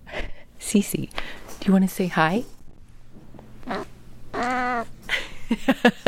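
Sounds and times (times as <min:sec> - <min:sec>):
speech: 0:00.7 - 0:02.6, 0:05.5 - 0:06.0
female cat of about 20 years moaning: 0:03.6 - 0:05.0.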